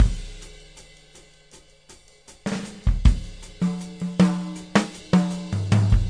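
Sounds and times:
natural ride shuffle drum loop at 79 bpm: 0.0s - 6.0s.

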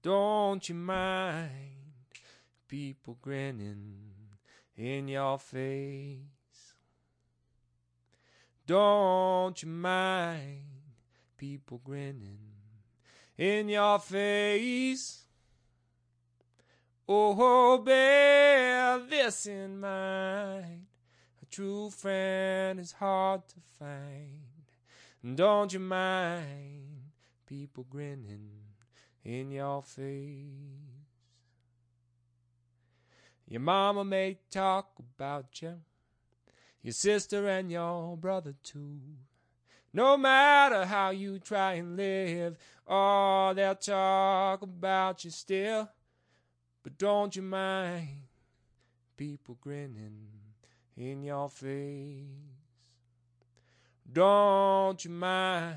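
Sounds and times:
a cappella blues singing: 0.0s - 6.8s, 8.6s - 15.3s, 17.0s - 31.4s, 33.5s - 35.9s, 36.7s - 46.0s, 46.8s - 48.4s, 49.2s - 53.0s, 54.0s - 55.7s.

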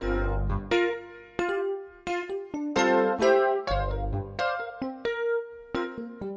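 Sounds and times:
new age piano funk loop with keys and organ: 0.0s - 1.6s, 2.8s - 6.1s.

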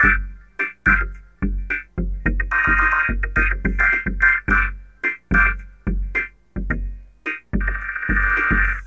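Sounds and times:
vocoded drums: 0.0s - 8.8s.

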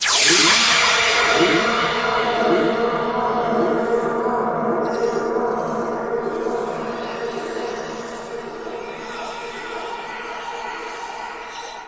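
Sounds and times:
long wet sound effect: 0.0s - 9.0s.

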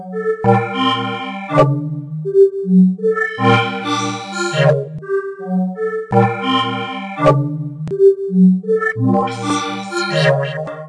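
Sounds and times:
synth melody loop: 0.2s - 2.3s, 3.0s - 5.2s, 5.8s - 8.0s, 8.7s - 10.8s.

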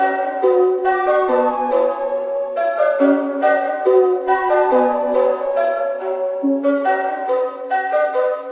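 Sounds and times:
quirky minor melody on funny instruments: 0.0s - 8.4s
synth and electronic loops: 3.0s - 7.3s.

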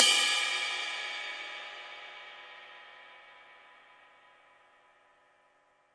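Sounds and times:
long ride cymbal from a real live drum kit: 0.0s - 3.8s.

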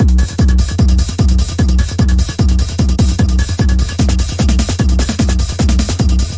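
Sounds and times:
150 bpm stereo trance tekno drum loops and breaks: 0.0s - 6.3s.

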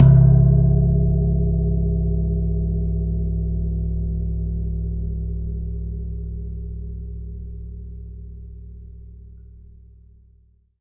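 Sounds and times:
long gong single hit: 0.0s - 7.5s.

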